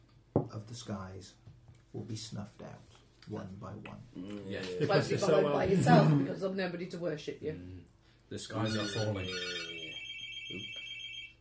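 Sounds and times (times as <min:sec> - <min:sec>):
speech: 0:00.4 - 0:09.8
telephone ringing with a steady high electronic tone: 0:08.6 - 0:11.3.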